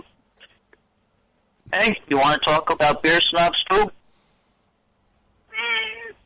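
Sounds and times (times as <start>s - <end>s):
speech: 1.7s - 4.0s
female Siamese house cat meowing: 5.5s - 6.2s.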